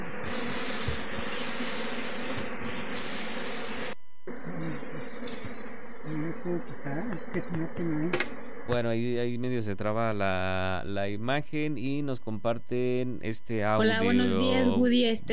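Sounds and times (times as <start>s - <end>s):
bees buzzing as beekeepers work the hives: 0.0s - 8.8s
speech: 6.5s - 15.3s.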